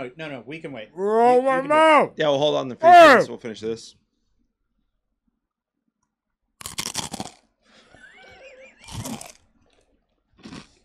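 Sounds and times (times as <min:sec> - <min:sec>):
speech: 0:00.0 - 0:04.0
crunching chips at the microphone: 0:06.6 - 0:07.5, 0:08.8 - 0:10.8.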